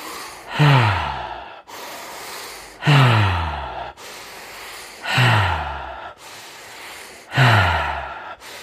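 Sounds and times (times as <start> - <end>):
deep even breathing with voiced falling sighs during a guided breathing exercise: 0.0 - 8.6.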